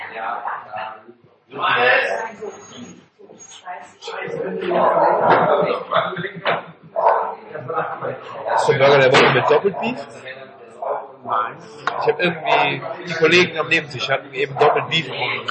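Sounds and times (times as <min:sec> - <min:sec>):
speech: 0:00.1 - 0:06.6, 0:08.2 - 0:10.4, 0:11.3 - 0:15.4
laughter: 0:04.2 - 0:10.1, 0:11.7 - 0:15.4
dog barking and yipping: 0:04.6 - 0:05.5, 0:07.0 - 0:07.4, 0:08.4 - 0:09.8, 0:10.8 - 0:11.1, 0:11.9 - 0:12.2, 0:14.5 - 0:15.0.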